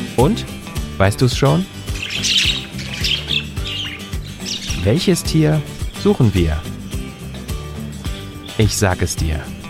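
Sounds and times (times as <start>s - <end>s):
speech: 0.2s - 2.4s, 4.9s - 6.7s, 8.6s - 9.6s
steady low tones: 0.2s - 7.7s
budgerigar chirping and squawking: 1.6s - 7.1s.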